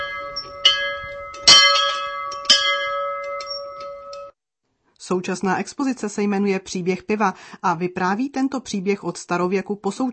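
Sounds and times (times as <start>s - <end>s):
small hand bell clanging in a brewery: 0.0s - 4.3s
speech: 5.1s - 10.1s.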